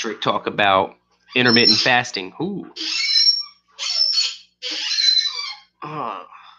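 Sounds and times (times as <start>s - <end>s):
speech: 0.0s - 3.2s, 3.8s - 4.9s, 5.8s - 6.4s
squeaks from a creaky hinge or chair: 1.3s - 2.0s, 2.8s - 5.7s.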